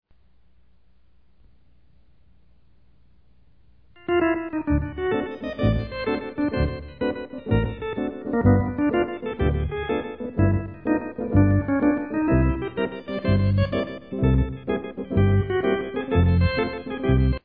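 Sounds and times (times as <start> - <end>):
Hammond organ playing: 4.0 - 17.4.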